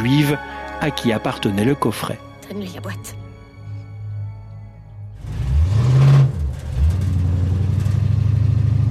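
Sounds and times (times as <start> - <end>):
speech: 0.0 - 3.2
car engine revving while driving around southern Portland: 5.1 - 8.8.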